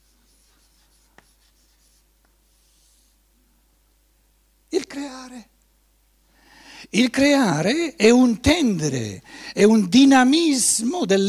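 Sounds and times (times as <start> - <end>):
writing strokes scraping on a board during a lecture: 0.0 - 3.2
speech: 6.9 - 11.2.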